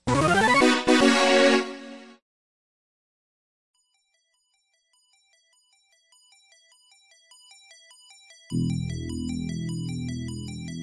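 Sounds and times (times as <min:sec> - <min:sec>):
bright FM-synth shoot 'em up video game music: 0:00.0 - 0:02.2, 0:08.5 - 0:10.8.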